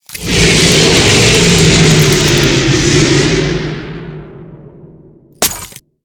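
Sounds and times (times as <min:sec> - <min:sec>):
snow squall wind: 0:00.0 - 0:03.7.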